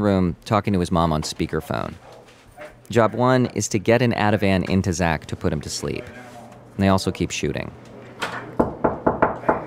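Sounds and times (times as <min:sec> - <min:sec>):
speech: 0:00.0 - 0:02.2, 0:02.9 - 0:08.4
hotel room door being opened with solid thumps: 0:08.6 - 0:09.6.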